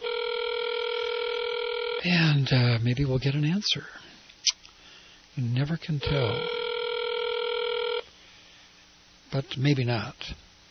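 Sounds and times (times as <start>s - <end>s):
electronic telephone ringback tone of an outgoing call: 0.0s - 2.3s, 6.1s - 8.1s
speech: 2.0s - 4.1s, 5.4s - 6.6s, 9.3s - 10.5s.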